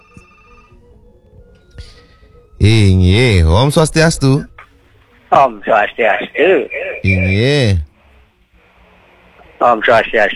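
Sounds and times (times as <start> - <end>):
telephone ringing on a call-in line: 0.0 - 0.9
speech: 2.6 - 4.5, 5.3 - 7.8, 9.6 - 10.3.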